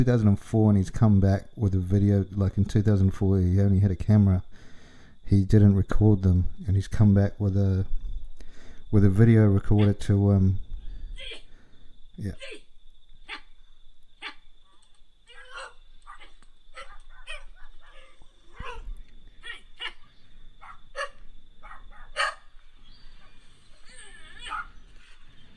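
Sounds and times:
speech: 0.0s - 4.7s, 5.3s - 8.0s, 8.9s - 10.6s, 12.2s - 12.6s
noise: 0.0s - 25.5s
person imitating a dog with barks, yips and whimpering: 9.8s - 10.0s, 11.2s - 11.4s, 12.3s - 13.5s, 14.2s - 14.4s, 15.2s - 20.0s, 20.6s - 22.4s, 23.8s - 24.7s.

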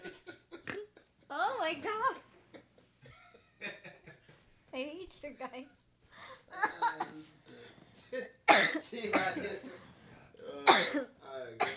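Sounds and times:
speech: 1.7s - 2.3s, 4.8s - 5.8s, 6.5s - 7.4s, 8.1s - 9.9s
harsh loud coughing: 6.6s - 7.2s, 8.2s - 9.7s, 10.6s - 11.7s.

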